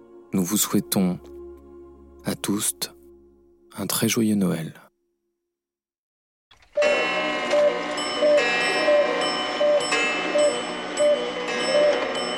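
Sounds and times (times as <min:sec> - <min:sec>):
speech: 0:00.3 - 0:01.4, 0:02.2 - 0:03.0, 0:03.7 - 0:04.8
many clocks ticking: 0:06.7 - 0:12.3.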